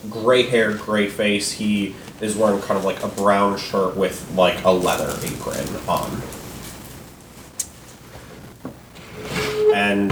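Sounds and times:
speech: 0.0 - 6.4
hiss: 0.0 - 10.0
wooden door shutting in a shop: 9.0 - 10.0.

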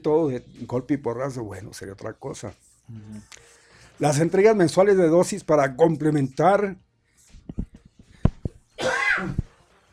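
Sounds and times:
speech: 0.0 - 6.8
small cough: 8.8 - 9.4.

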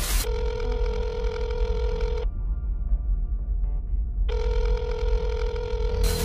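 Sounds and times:
low hum: 0.0 - 6.2
electronic telephone ringing: 0.2 - 2.3, 4.3 - 6.2.

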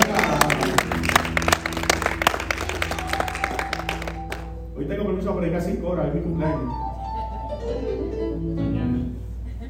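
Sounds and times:
audience at a church service applauding: 0.0 - 4.6
sustained musical tones: 0.0 - 9.6.

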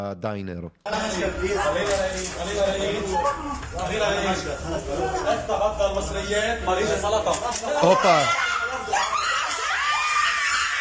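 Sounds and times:
speech: 0.0 - 9.1
laughter: 3.9 - 10.2
people shouting and screaming in a bank in Lebanon: 7.8 - 10.7.

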